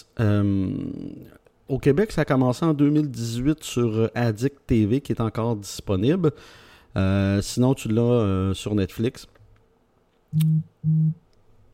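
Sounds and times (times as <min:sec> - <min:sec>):
speech: 0:00.0 - 0:09.4, 0:10.3 - 0:11.2
steady electronic beeps: 0:10.4 - 0:11.2.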